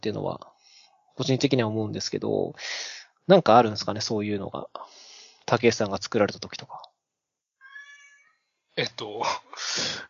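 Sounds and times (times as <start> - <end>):
speech: 0.0 - 0.5, 1.2 - 6.9, 8.8 - 10.0
drawn-out cat meow: 7.6 - 8.4
laughter: 9.0 - 9.6.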